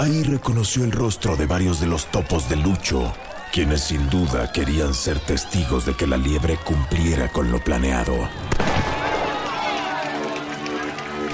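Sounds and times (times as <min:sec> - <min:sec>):
speech: 0:00.0 - 0:08.9
crowd chattering and cheering: 0:00.0 - 0:11.3
starting pistol shot: 0:08.4 - 0:09.4.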